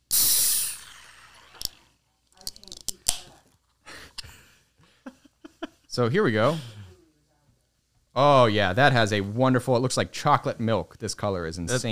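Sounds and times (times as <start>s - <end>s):
can of dark nitro beer cracked open with hiss of escaping gas: 0.0s - 3.4s
speech: 6.0s - 6.8s, 8.2s - 11.9s.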